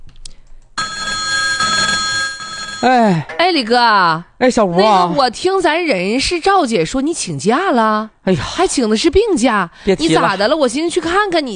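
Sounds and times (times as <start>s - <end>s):
telephone ringing tone while placing a phone call: 0.8s - 3.0s
speech: 2.8s - 11.5s.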